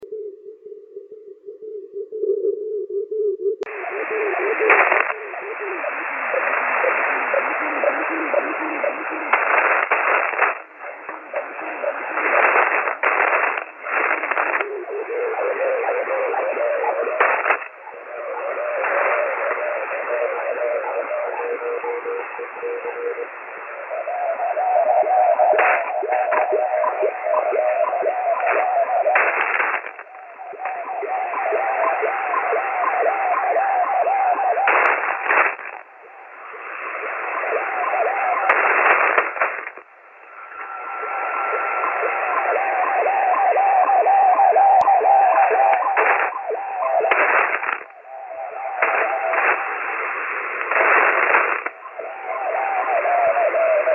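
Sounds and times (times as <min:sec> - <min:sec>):
weird noise: 0:00.0 - 0:53.9.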